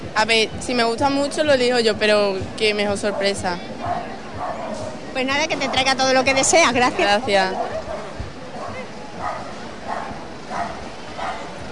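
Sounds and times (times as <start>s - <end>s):
rumbling outdoor noise: 0.0s - 11.7s
speech: 0.2s - 4.2s, 5.2s - 7.8s
dogs barking with sharp yips: 3.0s - 6.5s, 7.4s - 11.7s.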